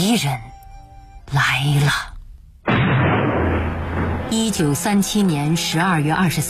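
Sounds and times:
speech: 0:00.0 - 0:00.6, 0:01.3 - 0:02.1, 0:04.3 - 0:06.4
deep continuous rumble of distant artillery fire: 0:02.6 - 0:04.6.

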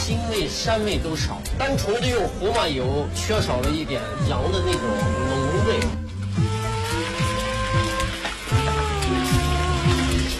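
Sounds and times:
speech: 0:00.4 - 0:06.0
lamb ribs stir-frying in a pot: 0:05.4 - 0:10.3.

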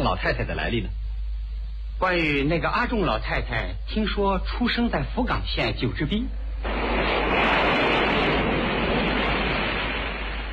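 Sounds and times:
speech: 0:00.1 - 0:01.0, 0:02.0 - 0:07.8
waves breaking against rocks on the Kunohama coast in Fukuoka Prefecture Japan: 0:06.6 - 0:10.5.

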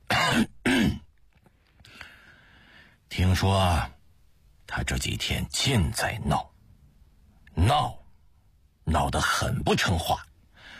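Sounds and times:
man clearing his throat with a loud cough: 0:00.1 - 0:01.1
speech: 0:03.2 - 0:04.0, 0:04.7 - 0:06.5, 0:07.6 - 0:08.0, 0:08.9 - 0:10.3.

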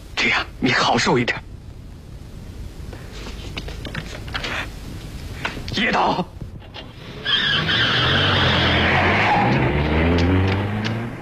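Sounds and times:
speech: 0:00.2 - 0:01.5, 0:05.8 - 0:06.4
car tyres skidding under hard braking: 0:06.9 - 0:11.2
car engine rumble: 0:07.0 - 0:11.2.

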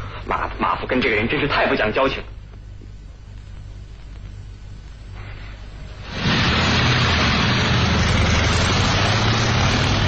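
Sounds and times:
speech: 0:00.3 - 0:02.4
motorcycle engine roaring as rider rides off: 0:06.1 - 0:10.0.

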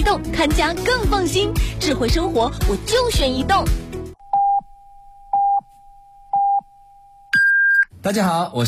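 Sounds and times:
speech: 0:00.1 - 0:03.8, 0:08.0 - 0:08.6
radio hourly time signal electronic beeps: 0:04.2 - 0:05.7, 0:06.3 - 0:07.9.

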